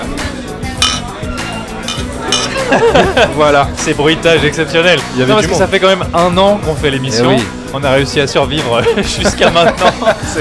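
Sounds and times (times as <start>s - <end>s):
people talking and murmuring: 0.0s - 10.3s
glasses clinking in a toast: 0.8s - 2.7s
laughter: 1.4s - 3.8s, 8.6s - 10.3s
speech: 2.7s - 10.3s.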